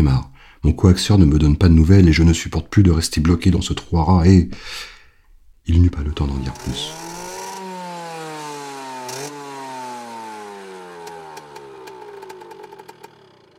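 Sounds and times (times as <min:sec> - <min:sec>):
speech: 0:00.0 - 0:04.9, 0:05.6 - 0:07.1
motorcycle engine slowing and idling in a courtyard: 0:06.3 - 0:13.5.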